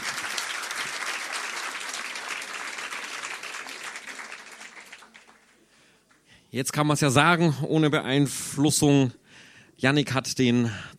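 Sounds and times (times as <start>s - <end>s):
audience applause for a slam performer: 0.0s - 6.2s
speech: 6.5s - 9.2s, 9.8s - 10.9s.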